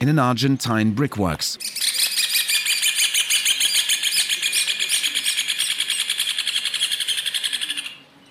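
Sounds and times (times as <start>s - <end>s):
speech: 0.0s - 2.0s
red ovenbird calling with a ringing trill: 1.6s - 8.2s.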